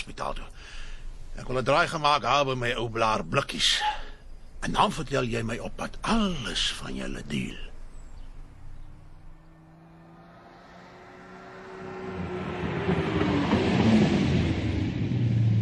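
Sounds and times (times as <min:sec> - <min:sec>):
speech: 0:00.1 - 0:04.0, 0:04.6 - 0:07.7
speeding sports car engine roaring: 0:08.2 - 0:15.6.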